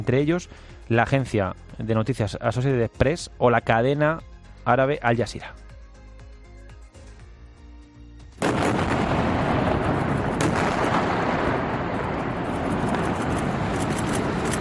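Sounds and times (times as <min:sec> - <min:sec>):
speech: 0:00.0 - 0:05.6
sudden loud blast from an Israeli army attack on a building: 0:08.4 - 0:14.5.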